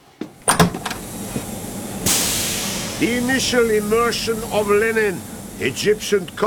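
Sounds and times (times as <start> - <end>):
laundry door being pushed open: 0.4 - 1.6
loud steady hiss: 0.4 - 6.4
speech: 3.0 - 6.4.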